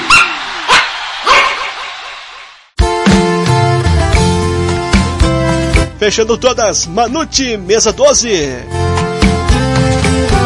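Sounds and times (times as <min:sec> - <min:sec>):
dogs barking: 0:00.0 - 0:01.9
loud music: 0:00.0 - 0:10.4
speech: 0:06.0 - 0:08.9.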